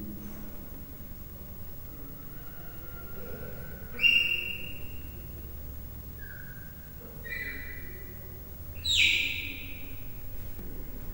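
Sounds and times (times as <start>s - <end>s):
three-month-old captive leopard cub chirping in a zoo: 3.5s - 5.2s, 6.1s - 10.2s.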